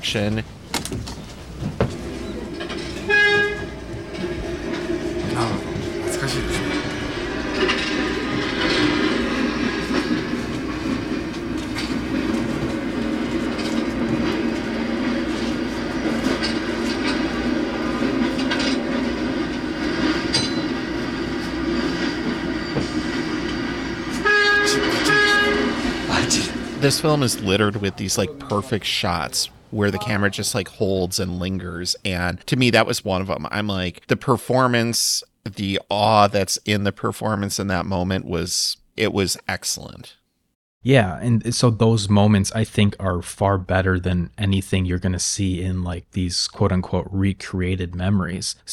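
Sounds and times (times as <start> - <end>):
speech: 0.0 - 1.1, 26.8 - 40.2, 40.8 - 48.7
train rumbling past: 0.0 - 33.8
train horn blast: 2.0 - 28.7.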